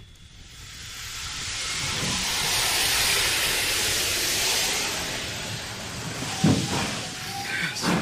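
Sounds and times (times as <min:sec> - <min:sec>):
coal-fired steam engine hissing steam as it starts moving: 0:00.0 - 0:08.0
coal-fired steam engine clanking knocks as it gets under way: 0:06.2 - 0:07.1, 0:07.8 - 0:08.0.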